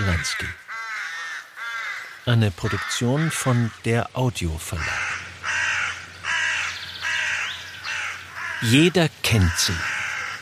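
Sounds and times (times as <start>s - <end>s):
crows cawing: 0.0s - 4.0s, 4.6s - 10.3s
speech: 0.1s - 0.6s, 2.3s - 5.1s, 8.6s - 10.0s.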